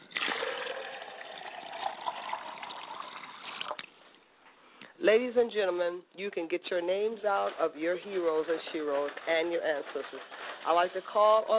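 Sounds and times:
water pouring into a glass: 0.0s - 3.9s
speech: 5.0s - 11.5s.

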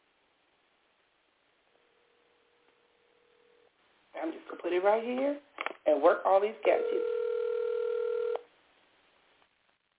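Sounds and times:
speech: 4.2s - 7.2s
thin telephone ringback tone over the phone line: 6.7s - 8.4s.

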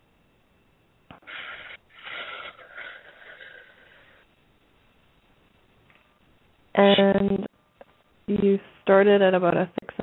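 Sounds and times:
big deep breath in and out during a guided session for easing pain: 1.2s - 4.3s
speech: 6.8s - 7.5s, 8.4s - 9.8s.

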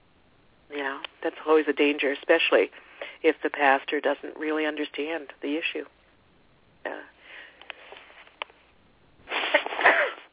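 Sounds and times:
speech: 1.2s - 6.0s, 6.8s - 7.1s
person sniffing: 9.3s - 10.2s
sneeze: 9.3s - 10.3s.

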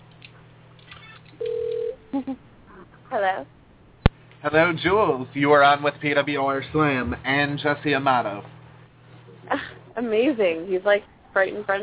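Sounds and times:
telephone line steady electronic tone while dialling: 1.0s - 2.0s
speech: 2.2s - 2.5s, 3.1s - 3.6s, 4.4s - 8.6s, 10.0s - 11.8s.

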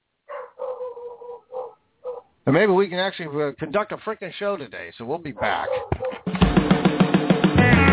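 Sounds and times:
dog barking: 0.3s - 2.3s, 5.4s - 6.3s
speech: 2.4s - 7.8s.

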